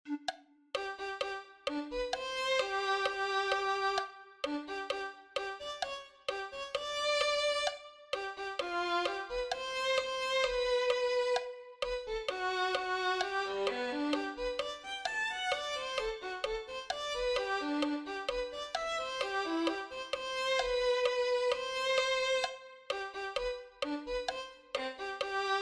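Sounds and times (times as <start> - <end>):
violin playing: 0.1 - 25.6.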